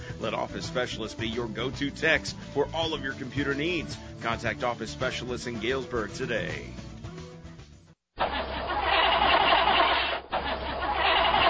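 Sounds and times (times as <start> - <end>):
music: 0.0 - 8.0
speech: 0.2 - 6.9
car engine cranking without starting in cold weather: 8.2 - 11.4.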